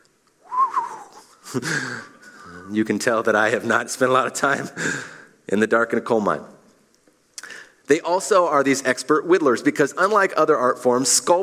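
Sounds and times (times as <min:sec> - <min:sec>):
person whistling a tune: 0:00.4 - 0:01.5
speech: 0:01.5 - 0:06.6, 0:07.9 - 0:11.4.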